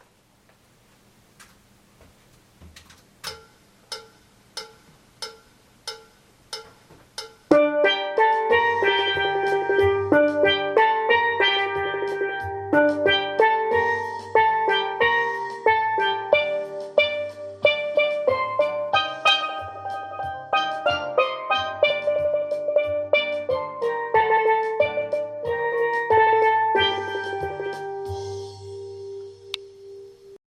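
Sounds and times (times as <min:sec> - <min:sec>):
steel band with tenor pan in three voices and bass: 0:06.6 - 0:30.4.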